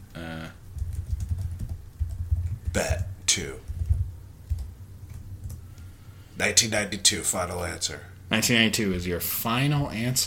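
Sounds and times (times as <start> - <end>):
typing on a computer keyboard: 0.8 - 5.6
speech: 2.8 - 3.7, 6.4 - 10.2.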